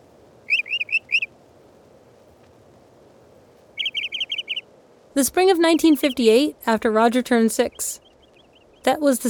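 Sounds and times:
soft hiss: 0:00.0 - 0:09.2
northern mockingbird singing repeated phrases: 0:00.5 - 0:01.3, 0:03.8 - 0:04.6, 0:05.2 - 0:09.2
speech: 0:05.2 - 0:08.0, 0:08.8 - 0:09.2.

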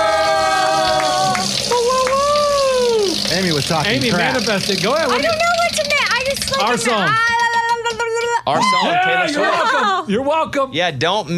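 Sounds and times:
prize wheel spinning and ticking: 0:00.0 - 0:08.4
speech: 0:03.7 - 0:05.6, 0:06.3 - 0:07.3, 0:08.5 - 0:11.3.

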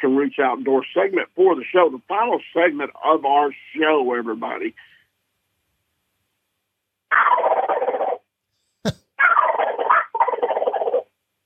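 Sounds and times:
speech: 0:00.0 - 0:04.9, 0:08.8 - 0:09.4
turkey gobbles made on a gobble call: 0:07.1 - 0:08.2, 0:09.2 - 0:11.0.

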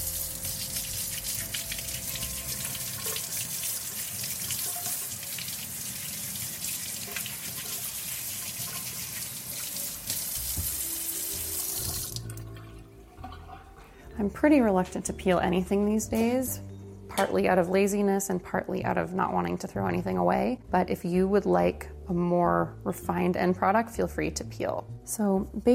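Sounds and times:
tap water running into a sink: 0:00.0 - 0:13.7
speech: 0:14.2 - 0:25.7.

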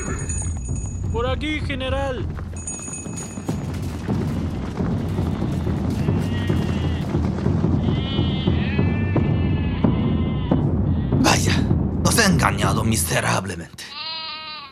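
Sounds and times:
dense rumbling background: 0:00.1 - 0:13.5
speech: 0:01.2 - 0:02.4, 0:12.7 - 0:13.9
goats hung by their hind legs from a tree bleating: 0:05.5 - 0:07.2, 0:07.8 - 0:11.2, 0:13.8 - 0:14.7.

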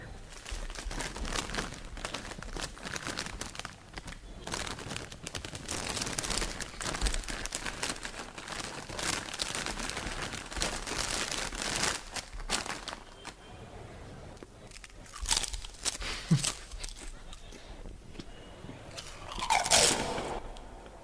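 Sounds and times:
record-breaking chip packet crinkling and rustling: 0:00.2 - 0:13.5, 0:14.4 - 0:18.3, 0:18.9 - 0:20.8
chewing: 0:14.6 - 0:18.3, 0:18.9 - 0:20.6.

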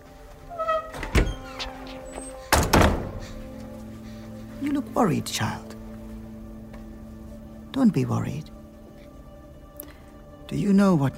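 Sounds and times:
faint door creaking: 0:00.2 - 0:04.4
door swinging shut with a solid thunk: 0:00.5 - 0:03.4
speech: 0:04.6 - 0:05.7, 0:07.8 - 0:08.5, 0:10.5 - 0:11.1.

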